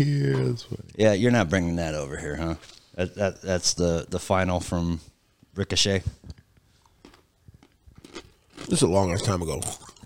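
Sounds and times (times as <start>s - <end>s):
speech: 0.0s - 6.4s, 8.7s - 9.8s
wet chewing of food with crunchy bites: 6.8s - 10.0s.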